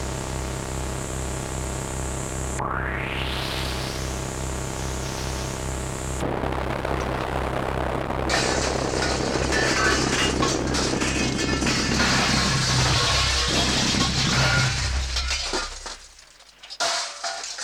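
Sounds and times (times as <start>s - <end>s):
steady droning engine hum: 0.0s - 16.1s
spaceship retro rockets on full thrust: 2.5s - 15.8s
spaceship crash-landing and skidding into the ground: 2.6s - 16.1s.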